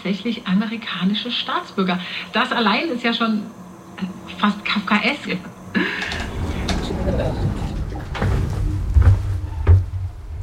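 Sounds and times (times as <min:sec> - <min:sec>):
speech: 0:00.0 - 0:06.3, 0:07.1 - 0:07.6
faint voices: 0:01.8 - 0:08.4
steady low rumble: 0:05.8 - 0:10.4
door swinging shut with dull heavy thuds: 0:06.0 - 0:10.4.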